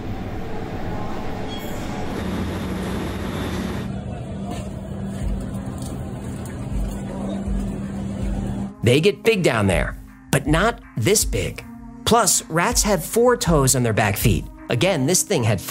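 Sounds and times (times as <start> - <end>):
New York subway train rumbling past: 0.0 - 8.7
speech: 8.9 - 15.6.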